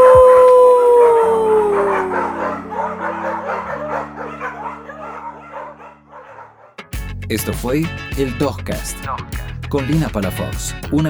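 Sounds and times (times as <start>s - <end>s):
dog howling: 0.0s - 6.8s
steady musical backing: 0.5s - 11.0s
speech: 7.3s - 11.0s.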